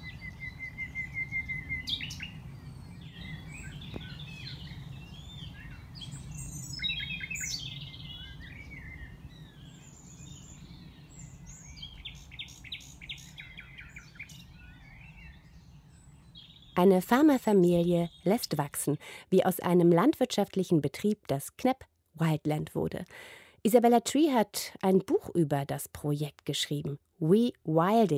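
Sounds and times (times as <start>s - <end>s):
nightingales singing whistles, trills and rapid chirps: 0.0s - 19.2s
speech: 16.8s - 28.1s.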